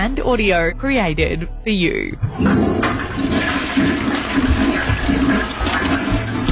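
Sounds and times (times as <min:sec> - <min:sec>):
speech: 0:00.0 - 0:03.2
toilet flushing: 0:02.2 - 0:06.5.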